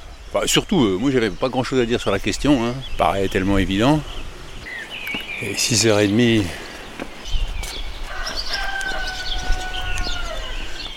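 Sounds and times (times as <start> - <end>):
speech: 0.3 - 4.3, 5.4 - 6.6
rooster crowing in the morning: 8.0 - 10.9.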